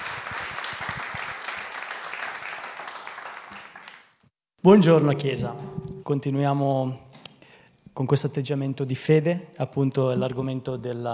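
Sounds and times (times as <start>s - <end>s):
audience applauding warmly: 0.0s - 4.1s
speech: 4.6s - 7.0s, 8.0s - 11.1s.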